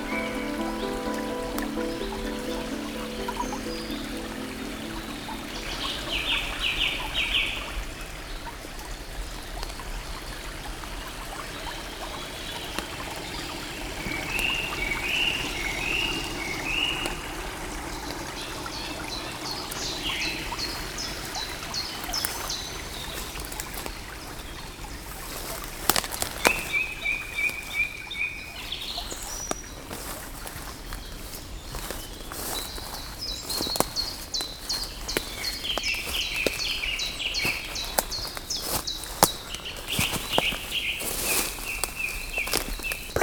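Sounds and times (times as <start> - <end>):
birds chirping: 0.0 - 9.2, 11.0 - 43.2
gurgling stream: 0.0 - 43.2.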